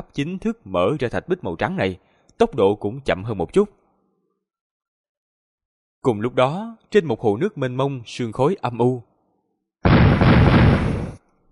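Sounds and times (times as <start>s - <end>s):
speech: 0.0s - 3.8s, 6.0s - 9.1s
explosive roar booming over a lake: 9.9s - 11.2s.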